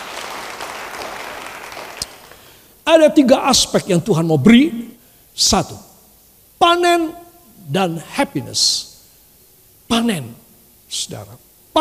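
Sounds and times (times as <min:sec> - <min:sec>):
sharp single clap: 0:00.0 - 0:02.4
crowd applauding: 0:00.0 - 0:02.6
speech: 0:02.9 - 0:05.9, 0:06.6 - 0:08.9, 0:09.9 - 0:11.7.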